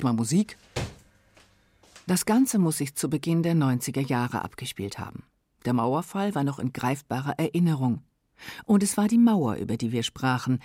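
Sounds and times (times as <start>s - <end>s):
speech: 0.0s - 0.8s, 2.1s - 10.6s
apartment door slamming shut: 0.7s - 1.0s.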